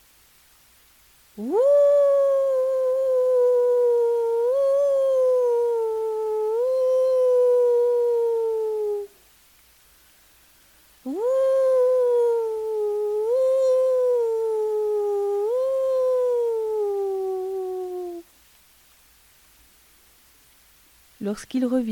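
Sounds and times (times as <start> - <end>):
speech: 1.4 - 1.8, 21.3 - 21.8
coyote howling: 1.4 - 9.2, 11.0 - 18.3.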